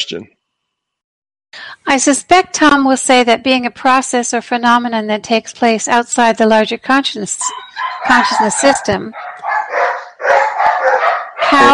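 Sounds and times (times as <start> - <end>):
speech: 0.0 - 0.4, 1.5 - 9.5, 11.5 - 11.7
several dogs barking and yelping: 7.4 - 11.7.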